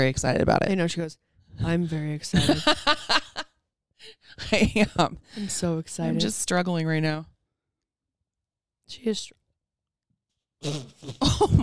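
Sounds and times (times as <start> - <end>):
speech: 0.0 - 3.2, 4.0 - 7.3, 8.9 - 9.4, 10.6 - 11.6
laughter: 2.4 - 3.4, 10.8 - 11.6
short rough rasping burp: 10.6 - 11.6.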